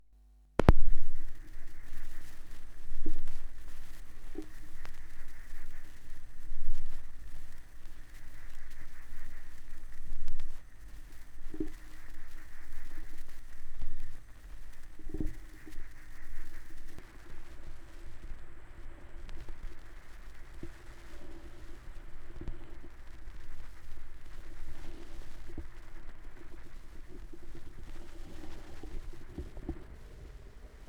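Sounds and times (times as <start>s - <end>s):
vinyl record crackle with tape echo: 0.5s - 30.8s.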